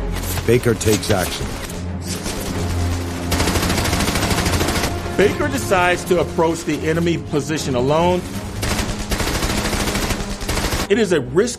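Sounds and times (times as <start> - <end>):
speech: 0.5 - 1.7, 5.2 - 8.4, 10.9 - 11.5
machine gun fire in combat: 2.2 - 5.3, 8.2 - 10.9.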